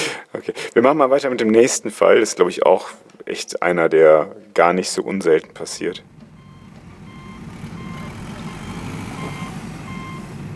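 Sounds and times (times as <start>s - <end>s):
speech: 0.4s - 6.2s
construction-site truck diesel engine rumble: 5.3s - 10.5s
construction-site truck reversing alarm beeps: 5.6s - 10.5s.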